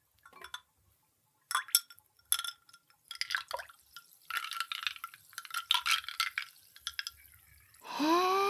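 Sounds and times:
medicine spoon stirring liquid in a glass: 0:00.3 - 0:00.7, 0:01.5 - 0:07.4.

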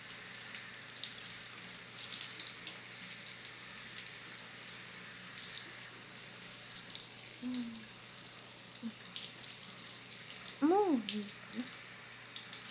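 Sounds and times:
running water rinsing a person's body: 0:00.0 - 0:12.6
speech: 0:11.1 - 0:11.7.

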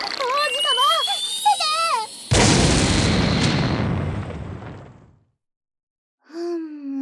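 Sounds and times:
loud explosion with deep broadband blast: 0:00.2 - 0:05.2.

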